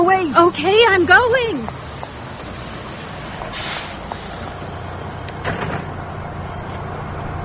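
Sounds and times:
steady low bus engine rumble: 0:00.0 - 0:07.4
speech: 0:00.3 - 0:01.8
bus door sliding open and shut: 0:01.2 - 0:06.0.

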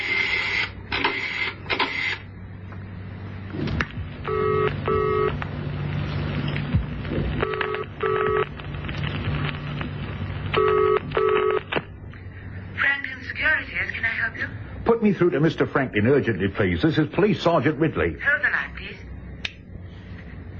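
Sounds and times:
low steady hum: 0:00.0 - 0:20.5
telephone double ringing: 0:04.3 - 0:05.4, 0:07.4 - 0:08.5, 0:10.6 - 0:11.7
speech: 0:15.0 - 0:19.0.

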